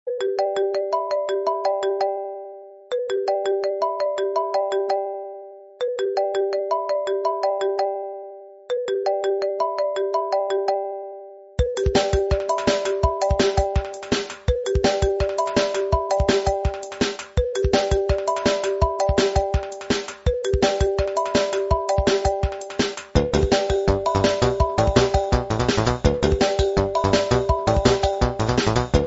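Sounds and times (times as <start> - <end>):
Apple iPhone ringtone: 0.1 - 29.0.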